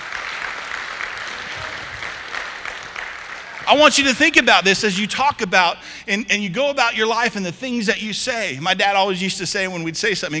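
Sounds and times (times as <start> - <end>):
audience applause: 0.0 - 4.1
speech: 3.7 - 10.3.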